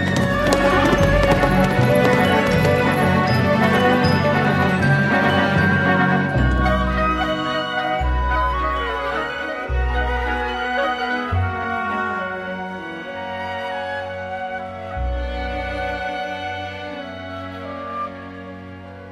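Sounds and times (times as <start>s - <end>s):
horse hooves galloping: 0.0s - 5.8s
loud dense orchestral music: 0.0s - 19.1s.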